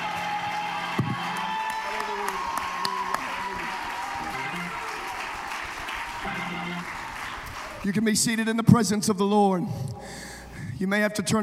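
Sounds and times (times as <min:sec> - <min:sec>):
church audience applause: 0:00.0 - 0:08.0
speech: 0:07.9 - 0:10.2, 0:10.8 - 0:11.4.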